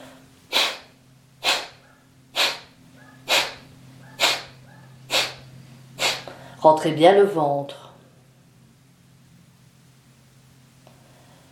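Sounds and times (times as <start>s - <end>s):
forceful breath exhalations through the left nostril: 0.0s - 1.8s, 2.4s - 6.6s
speech: 6.6s - 7.8s.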